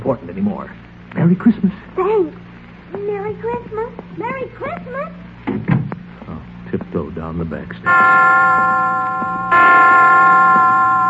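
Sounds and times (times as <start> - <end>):
speech: 0.1 - 5.8, 6.7 - 10.8
hospital chimes striking five o'clock: 7.9 - 11.0.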